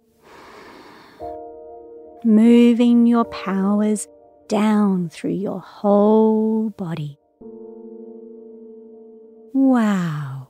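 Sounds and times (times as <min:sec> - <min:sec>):
deep breath in and out: 0:00.2 - 0:01.4
speech: 0:02.2 - 0:07.2, 0:09.5 - 0:10.3.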